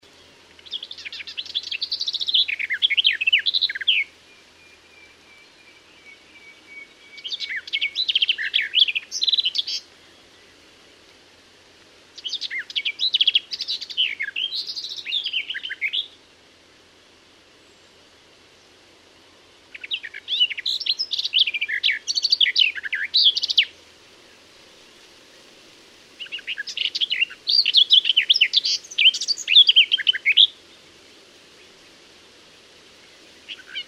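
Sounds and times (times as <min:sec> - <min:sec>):
garden warbler: 0:00.0 - 0:16.3, 0:17.5 - 0:33.8.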